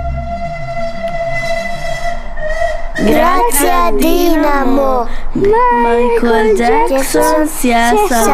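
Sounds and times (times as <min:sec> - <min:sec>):
sustained high horn-like tone: 0:00.0 - 0:03.6
fast train rushing by with a deep steady rumble: 0:00.0 - 0:05.4
speech: 0:03.0 - 0:08.3.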